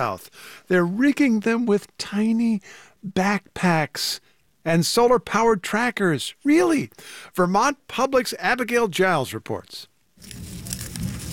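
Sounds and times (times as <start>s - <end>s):
speech: 0.0s - 10.5s
monarch butterfly legs rustling: 10.2s - 11.3s.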